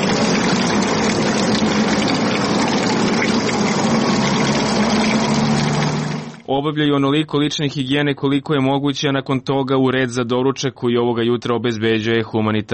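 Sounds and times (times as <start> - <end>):
water running from a public fountain in a park: 0.0 - 6.5
speech: 6.6 - 12.7.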